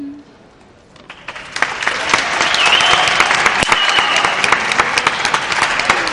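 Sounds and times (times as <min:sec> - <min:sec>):
colleagues at a university radio station applauding: 0:01.0 - 0:06.1.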